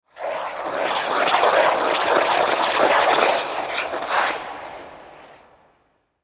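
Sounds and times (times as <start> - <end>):
ice skate spin twirl on a rink: 0.0 - 6.2.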